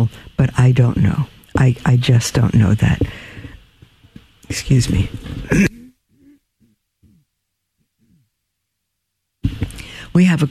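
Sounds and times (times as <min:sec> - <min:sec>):
speech: 0:00.1 - 0:03.2, 0:04.5 - 0:05.7, 0:10.3 - 0:10.4
sharp breathy throat clearing: 0:05.4 - 0:07.3, 0:07.9 - 0:08.3.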